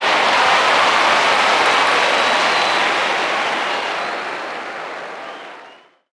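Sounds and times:
crowd cheering: 0:00.0 - 0:06.1.

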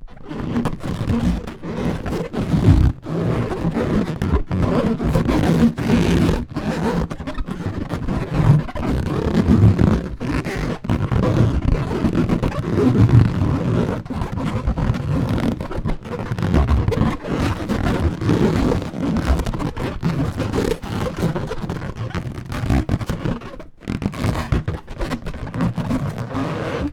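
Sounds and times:
balloon rubbing: 0:00.0 - 0:26.9.

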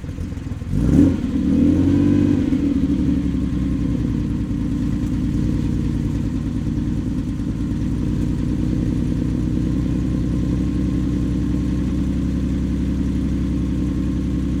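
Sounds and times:
Ferrari Dino engine idling: 0:00.0 - 0:14.5.

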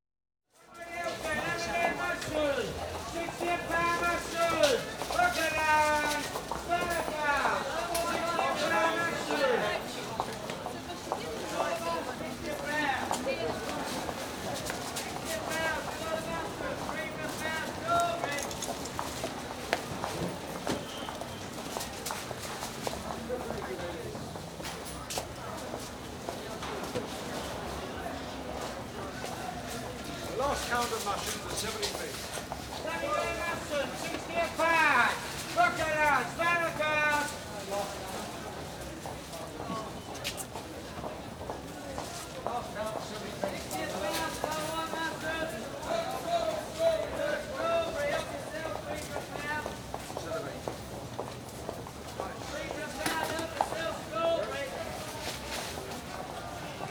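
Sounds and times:
street market crowd in London: 0:00.5 - 0:56.8.

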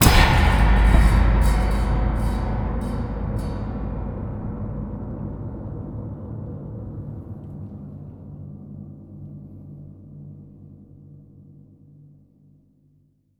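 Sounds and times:
cinematic metal impact strikes: 0:00.0 - 0:07.0.

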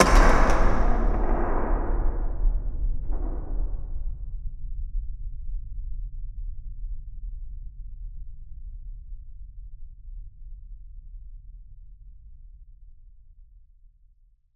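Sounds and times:
cinematic metal impacts: 0:00.0 - 0:04.7.

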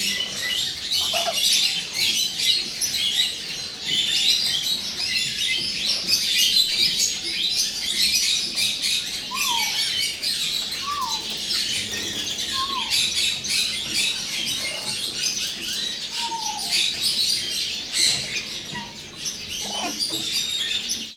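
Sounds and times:
birds on a farm: 0:00.0 - 0:21.1.

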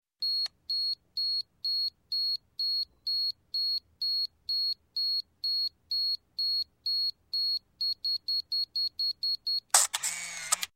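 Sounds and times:
35mm automatic camera self-timer beeps: 0:00.2 - 0:10.7
35mm automatic camera shutter firing: 0:09.7 - 0:10.7.

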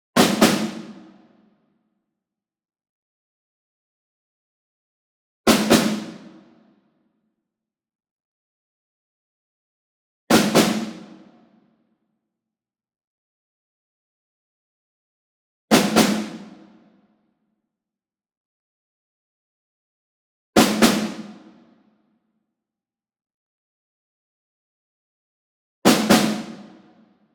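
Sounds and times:
snare drum ensemble group: 0:00.2 - 0:01.2, 0:05.5 - 0:06.5, 0:10.3 - 0:11.4, 0:15.7 - 0:16.8, 0:20.6 - 0:21.6, 0:25.9 - 0:26.9.

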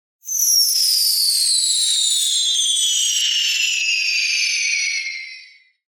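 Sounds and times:
falling bomb whistle: 0:00.2 - 0:05.8.

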